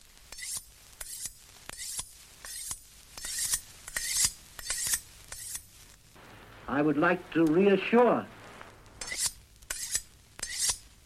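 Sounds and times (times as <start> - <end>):
knife being sharpened: 0.3 - 5.7, 9.0 - 10.8
speech: 6.8 - 8.4.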